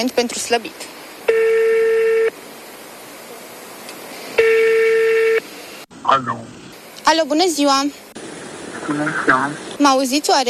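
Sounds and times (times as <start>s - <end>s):
speech: 0.0s - 1.5s, 6.1s - 8.0s, 8.9s - 10.4s
ringback tone of an outgoing telephone call: 1.3s - 2.3s, 4.4s - 5.4s.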